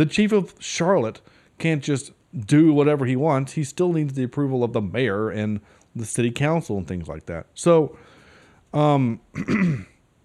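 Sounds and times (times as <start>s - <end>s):
speech: 0.0s - 8.1s, 8.7s - 9.9s
person clearing throat with rough harsh rasp: 9.1s - 10.0s.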